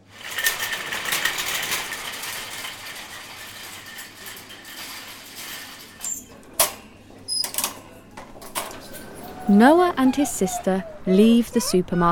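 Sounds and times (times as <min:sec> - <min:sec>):
metal clanks and knocks: 0:00.0 - 0:09.4
shopping trolley with a bag of shopping rolling: 0:00.0 - 0:12.0
speech: 0:09.5 - 0:12.0.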